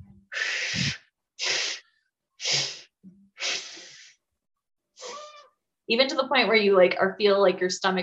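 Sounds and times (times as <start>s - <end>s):
forceful exhalations during a breathing exercise: 0.3s - 4.2s
speech: 5.9s - 8.0s.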